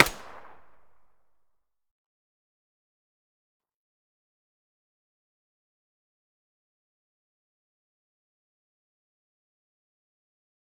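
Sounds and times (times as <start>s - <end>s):
distant submachine gun muzzle shot: 0.0s - 1.1s.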